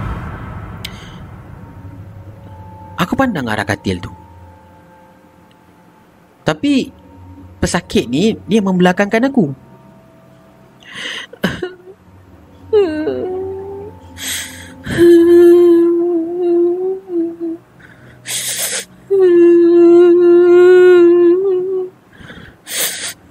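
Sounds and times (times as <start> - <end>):
speech: 3.1 - 4.2, 6.5 - 7.0, 7.6 - 9.7
woman sobbing and whimpering: 10.9 - 11.9, 12.7 - 21.9.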